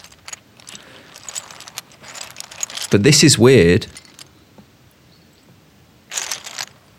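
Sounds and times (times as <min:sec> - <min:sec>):
bricks clattering while being rummaged through: 0:00.0 - 0:03.0, 0:06.1 - 0:06.9
speech: 0:02.9 - 0:04.0.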